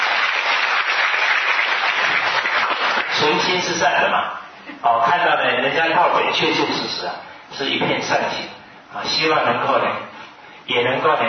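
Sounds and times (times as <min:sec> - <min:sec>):
audience applause: 0:00.0 - 0:03.2
speech: 0:03.2 - 0:10.1, 0:10.7 - 0:11.2.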